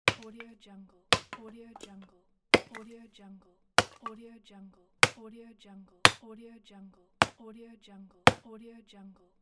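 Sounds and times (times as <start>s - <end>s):
axe chopping wood: 0.0s - 0.4s, 1.2s - 2.0s, 2.6s - 2.9s, 3.8s - 4.1s.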